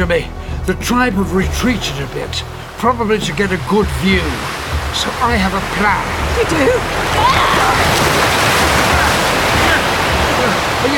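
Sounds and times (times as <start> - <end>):
speech: 0.0 - 8.7, 10.4 - 10.9
waves of the incoming tide washing onto a sandy beach: 2.7 - 10.9.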